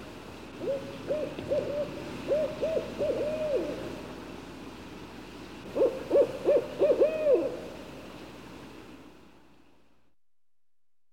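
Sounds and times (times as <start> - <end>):
barred owl giving rhythmic arched hoots: 0.6 - 4.0, 5.7 - 7.8.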